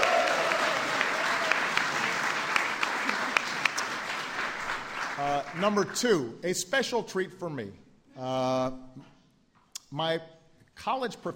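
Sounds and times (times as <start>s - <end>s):
large audience applauding during a speech: 0.0s - 6.1s
speech: 5.5s - 9.1s, 9.9s - 11.3s.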